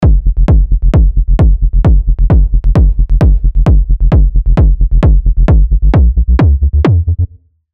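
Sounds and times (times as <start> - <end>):
bass drum: 0.0 - 7.4.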